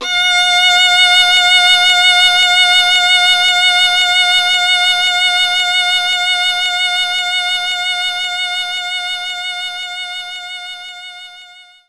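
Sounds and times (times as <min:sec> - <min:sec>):
violin playing F sharp 5: 0:00.0 - 0:08.8.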